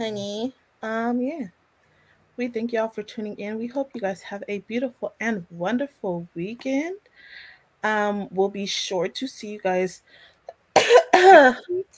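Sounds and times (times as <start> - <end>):
speech: 0.0 - 1.6, 2.4 - 11.9
loud raspy coughs: 10.8 - 11.7.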